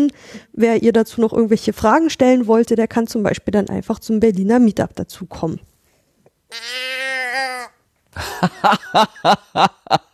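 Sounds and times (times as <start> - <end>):
speech: 0.0 - 5.7, 6.5 - 10.0
nasal moo from a toy cow noisemaker: 6.5 - 7.8
rhythmic breathy laughter: 8.2 - 10.1.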